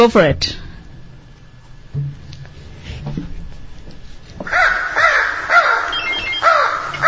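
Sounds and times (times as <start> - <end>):
speech: 0.0 - 0.6
low rumble: 0.0 - 7.0
crow cawing: 4.4 - 7.0.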